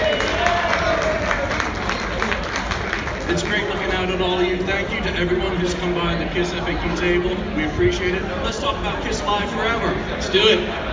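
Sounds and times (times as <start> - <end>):
audience applauding: 0.0 - 4.3
murmur of voices: 0.0 - 10.9
speech: 3.3 - 10.9.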